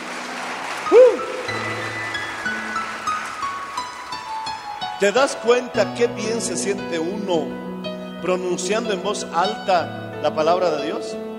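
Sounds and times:
crowd applauding loudly: 0:00.0 - 0:05.2
speech: 0:05.0 - 0:11.3.

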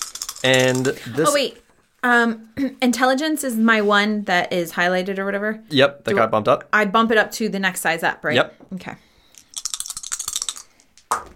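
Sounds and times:
dice clattering across a table: 0:00.0 - 0:01.0, 0:09.5 - 0:11.3
speech: 0:00.4 - 0:09.1.

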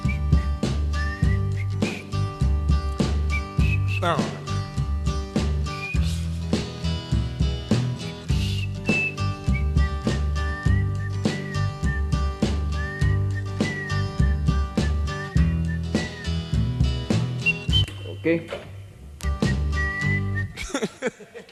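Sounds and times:
person whistling a wavering high melody line: 0:00.0 - 0:02.2, 0:03.3 - 0:04.2, 0:05.7 - 0:06.5, 0:08.0 - 0:16.4, 0:17.4 - 0:18.3, 0:19.2 - 0:20.6
soul song with steady drums, bass and horns: 0:00.0 - 0:17.8, 0:19.4 - 0:20.4
speech: 0:04.0 - 0:04.4, 0:18.3 - 0:18.7
laughter: 0:20.5 - 0:21.5.

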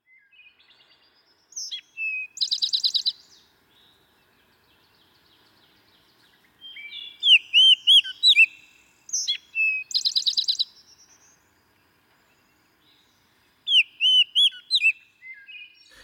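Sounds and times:
Baltimore oriole singing whistly phrases: 0:01.6 - 0:03.3, 0:06.6 - 0:11.4, 0:13.7 - 0:15.9.

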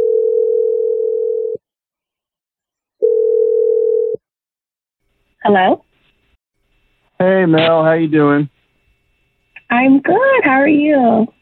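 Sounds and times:
low-pitched electronic telephone line tone after a number is dialed: 0:00.0 - 0:01.6, 0:03.0 - 0:04.2
speech: 0:05.4 - 0:05.9, 0:07.2 - 0:08.6, 0:09.7 - 0:11.4.

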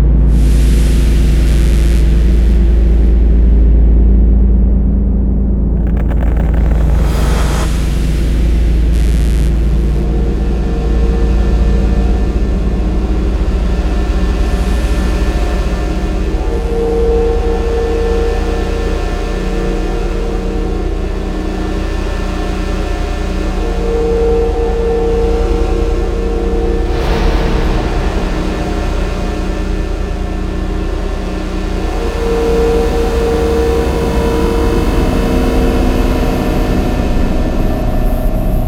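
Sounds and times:
desolate dark drones: 0:00.0 - 0:38.6
disturbing whooshes: 0:05.8 - 0:08.0
oppressive analog synth textures: 0:05.8 - 0:08.0.

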